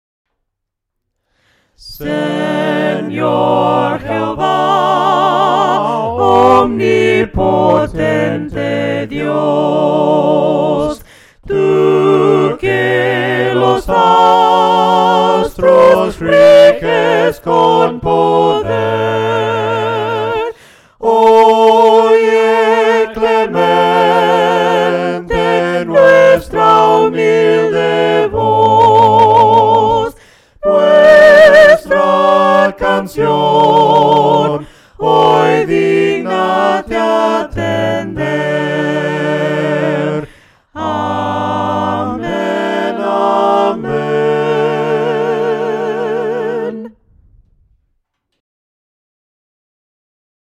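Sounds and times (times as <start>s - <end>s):
voices singing a hymn a cappella: 1.4s - 47.2s.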